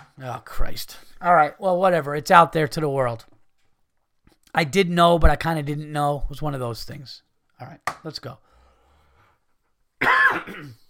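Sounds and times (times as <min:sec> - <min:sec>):
speech: 0:00.2 - 0:03.3, 0:04.5 - 0:08.5, 0:10.0 - 0:10.8
rough cough with raspy throat-clearing: 0:10.0 - 0:10.8
short raspy throat-clearing: 0:10.0 - 0:10.8.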